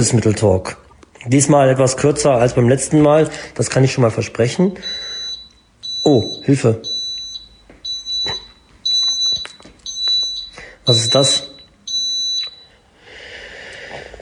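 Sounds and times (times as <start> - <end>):
speech: 0.0 - 5.0, 6.0 - 6.9, 10.9 - 11.5
shrill piercing smoke alarm beeps: 4.5 - 12.9.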